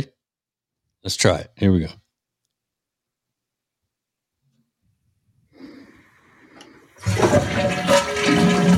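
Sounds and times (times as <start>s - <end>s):
speech: 1.0s - 2.0s
toilet flushing: 6.2s - 8.7s.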